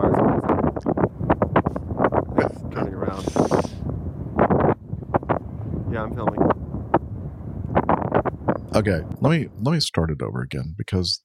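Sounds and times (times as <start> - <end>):
gusty wind buffeting the microphone: 0.0 - 9.6
speech: 8.8 - 11.2.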